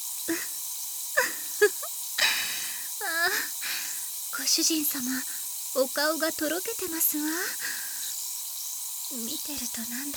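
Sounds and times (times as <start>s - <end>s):
strongly carbonated drink fizzing: 0.0s - 10.1s
brief breathy bursts: 1.2s - 4.2s, 7.5s - 8.1s
speech: 4.5s - 7.8s, 9.1s - 10.1s.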